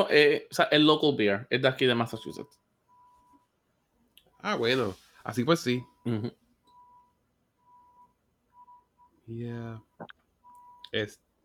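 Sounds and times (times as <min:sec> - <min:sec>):
speech: 0:00.0 - 0:02.6, 0:04.4 - 0:06.4, 0:09.3 - 0:10.2, 0:10.9 - 0:11.2
faint electronic beep from a delivery truck reversing outside: 0:05.8 - 0:09.2, 0:10.4 - 0:10.9.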